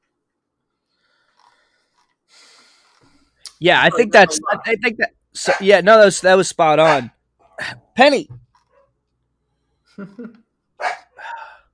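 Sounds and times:
speech: 0:03.6 - 0:08.4, 0:10.0 - 0:11.0
dog barking: 0:04.3 - 0:04.7, 0:05.4 - 0:05.7, 0:06.8 - 0:07.1, 0:10.8 - 0:11.6.

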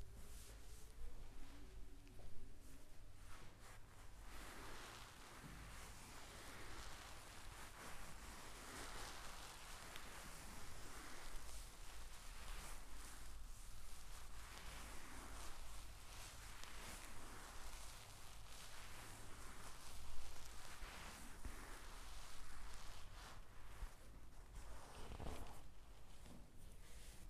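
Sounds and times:
hands rubbing and kneading against fabric in a chair massage: 0:00.0 - 0:27.2
low steady hum: 0:00.0 - 0:27.2.

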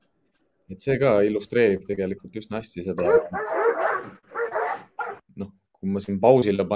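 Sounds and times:
speech: 0:00.7 - 0:04.2, 0:05.4 - 0:06.7
dogs barking behind a fence: 0:03.0 - 0:05.2.

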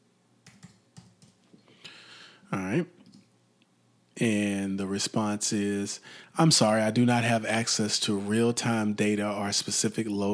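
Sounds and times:
typing on a computer keyboard: 0:00.4 - 0:01.4
speech: 0:02.5 - 0:03.0, 0:04.2 - 0:10.3.

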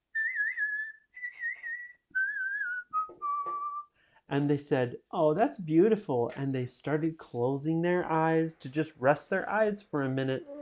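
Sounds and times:
whistled melody: 0:00.0 - 0:03.9
speech: 0:04.3 - 0:10.5.

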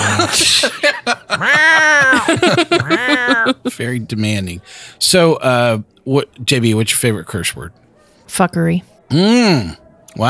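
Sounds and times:
person chuckling: 0:00.0 - 0:03.7
speech: 0:00.3 - 0:10.2
cat meowing: 0:01.4 - 0:03.6.

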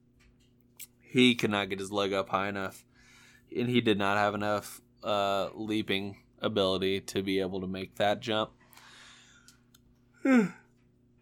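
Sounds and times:
speech: 0:01.1 - 0:02.9, 0:03.5 - 0:08.6, 0:10.2 - 0:10.6
person yawning: 0:10.2 - 0:10.7.

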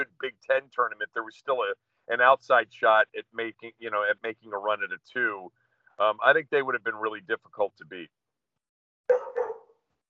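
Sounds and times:
speech: 0:00.1 - 0:08.2
dog barking: 0:09.1 - 0:09.8.

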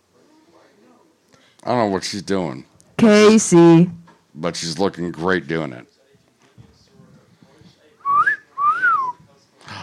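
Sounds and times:
faint noise: 0:00.0 - 0:09.8
speech: 0:01.6 - 0:05.9
loud wolf whistle: 0:08.1 - 0:09.2.

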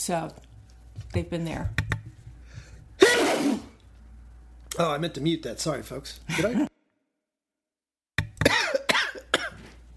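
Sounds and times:
speech: 0:00.0 - 0:01.8, 0:04.8 - 0:06.7
person coughing with a raspy throaty rattle: 0:08.4 - 0:09.8.

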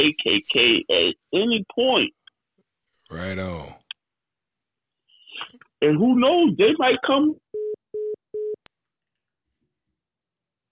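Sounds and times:
speech: 0:00.0 - 0:02.2, 0:03.1 - 0:03.8, 0:05.4 - 0:07.4
dropped-call telephone beeps: 0:07.6 - 0:08.6.

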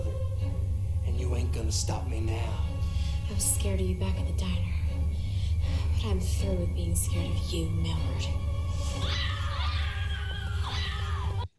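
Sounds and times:
low rumble: 0:00.0 - 0:10.7
speech: 0:01.7 - 0:02.7, 0:03.3 - 0:04.8, 0:05.7 - 0:08.4
high-pitched screams in a film clip: 0:08.7 - 0:11.5.

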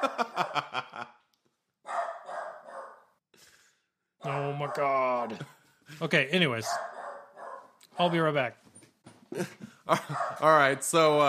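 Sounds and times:
laughter: 0:00.0 - 0:01.2, 0:09.3 - 0:10.5
dachshund barking: 0:01.9 - 0:03.1, 0:04.6 - 0:05.0, 0:06.6 - 0:08.3, 0:10.1 - 0:10.5
speech: 0:04.8 - 0:06.9, 0:08.0 - 0:08.6, 0:09.3 - 0:11.2.

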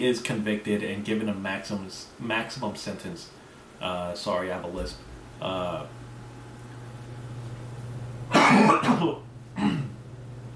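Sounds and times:
speech: 0:00.0 - 0:06.0, 0:08.6 - 0:09.2
loud harsh coughing: 0:08.3 - 0:10.0.

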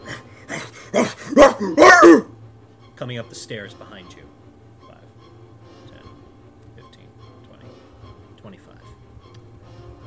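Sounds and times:
person imitating dog barking: 0:00.0 - 0:02.3
speech: 0:01.0 - 0:02.3, 0:03.0 - 0:04.5.

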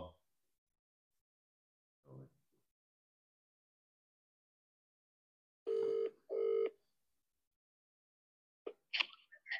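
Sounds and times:
phone dialing tone: 0:05.7 - 0:06.7.

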